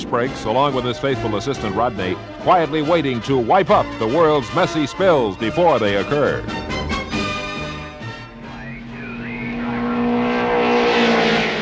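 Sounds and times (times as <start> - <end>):
race cars speeding around a track: 0.0 - 11.6
speech: 0.1 - 6.6.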